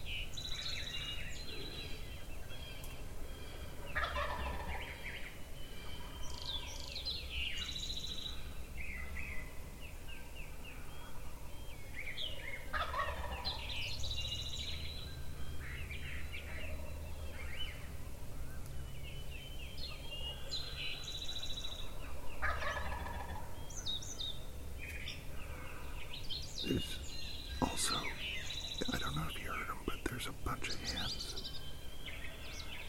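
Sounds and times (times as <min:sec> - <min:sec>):
faint bird chirps: 0:00.0 - 0:32.8
steady outdoor hum: 0:00.0 - 0:32.8
wild turkey gobbling from its roost below a ridge peak: 0:04.0 - 0:04.9, 0:12.7 - 0:13.6, 0:22.4 - 0:23.5.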